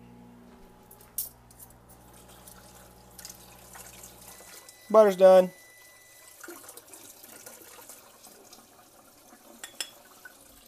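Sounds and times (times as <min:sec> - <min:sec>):
low appliance hum: 0:00.0 - 0:10.6
water trickling and dripping while being measured for baking: 0:02.1 - 0:04.8, 0:05.8 - 0:10.6
speech: 0:04.9 - 0:05.6.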